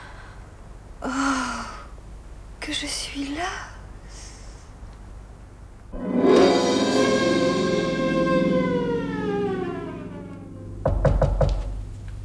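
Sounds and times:
speech: 2.7 - 3.8
long sustained tone sinking in pitch: 6.0 - 11.4
firm knocks on a door by a servant: 10.8 - 11.7.

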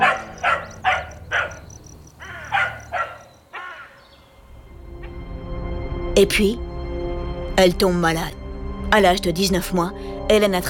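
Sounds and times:
dog barking in sharp yaps: 0.0 - 3.9
faint high-pitched insect-like chirping: 0.0 - 5.2
speech: 6.2 - 6.6, 7.6 - 10.6.

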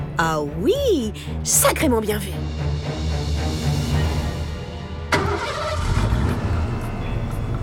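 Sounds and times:
speech: 0.2 - 3.6
car engine starting and rumbling: 5.1 - 7.6.

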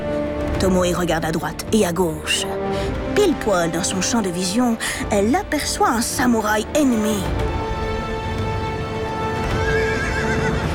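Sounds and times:
speech: 0.6 - 7.5
horse galloping into battle: 7.4 - 10.7
wavering horse whinny: 9.4 - 10.7.

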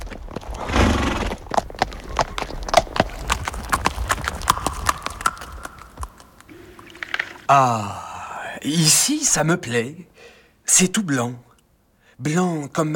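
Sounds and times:
horse hooves clip-clopping on a hard surface: 0.0 - 7.4
brief whinny-like burst: 0.6 - 1.4
speech: 7.5 - 8.0, 8.6 - 10.1, 10.7 - 11.5, 12.2 - 12.9.

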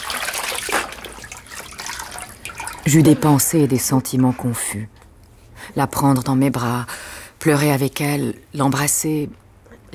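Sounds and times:
water pouring and splashing as a standing person is rinsed on a tiled floor: 0.0 - 3.2
speech: 2.9 - 5.0, 5.8 - 9.9.

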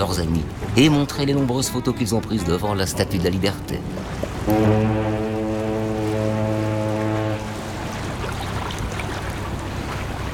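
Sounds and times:
speech: 0.0 - 5.2
boat engine rumble as the boat departs: 0.0 - 10.3
churning water: 0.0 - 10.3
ship horn blast: 4.3 - 8.2.

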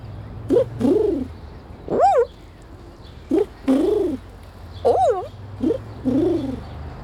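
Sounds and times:
pigeon or dove cooing: 0.5 - 1.3, 1.9 - 2.4, 3.3 - 6.7.

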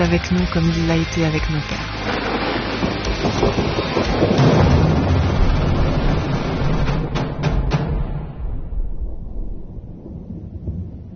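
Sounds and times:
speech: 0.0 - 2.5, 3.4 - 4.7
deep rumbling drum roll: 1.8 - 10.0.

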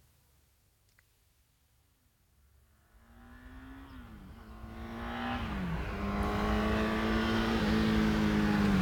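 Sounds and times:
car engine approaching on a road, changing gear: 3.0 - 8.8.

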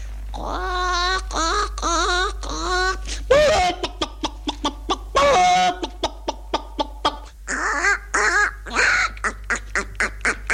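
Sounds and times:
person vocally imitating a hen clucking: 0.3 - 10.5.

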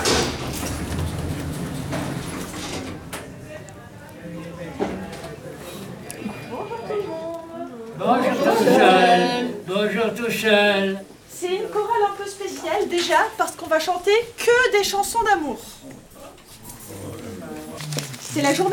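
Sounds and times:
lift doors sliding open: 0.0 - 6.6
crowd chatter: 0.0 - 18.7
speech: 8.0 - 15.8, 18.4 - 18.7.

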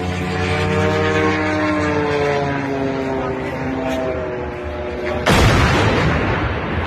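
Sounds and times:
drone engine buzzing in a suburb of Moscow: 0.0 - 6.8
drone crashing into a large construction crane in a suburb of Moscow: 5.2 - 6.8.

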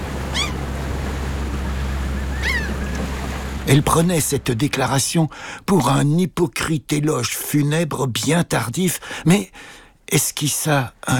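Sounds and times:
waves breaking onto a nearby beach: 0.0 - 5.6
brief high bird cries: 0.3 - 0.7, 2.2 - 3.0
speech: 3.7 - 11.1.

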